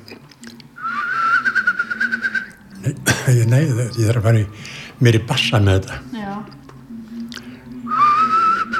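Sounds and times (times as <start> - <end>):
person whistling an imitation of a whimbrel's bubbling call: 0.8 - 2.6, 7.9 - 8.7
laughter: 2.7 - 6.1
speech: 2.9 - 6.6.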